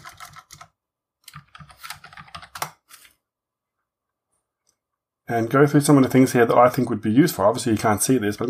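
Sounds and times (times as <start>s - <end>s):
computer keyboard typing a search on a shopping website: 0.0s - 2.9s
speech: 5.3s - 8.4s.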